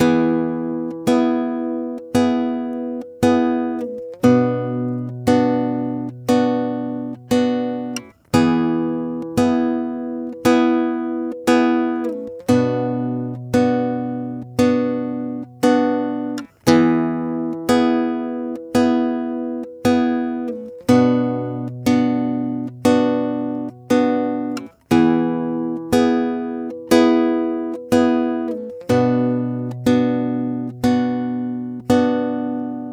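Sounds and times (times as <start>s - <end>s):
guitar playing a simplified rhythm in E: 0.0s - 32.9s.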